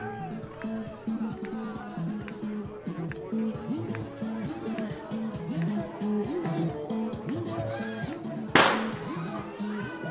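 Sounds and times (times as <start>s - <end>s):
chatter and babble of a large gathered crowd: 0.0s - 10.0s
firework bang indoors beneath a roof by a train station: 8.6s - 9.0s.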